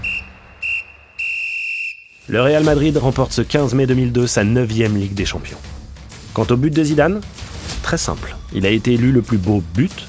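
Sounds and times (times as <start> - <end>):
referee's whistle blasts at end of football final: 0.0 - 2.3
speech: 2.3 - 5.8, 6.4 - 10.0.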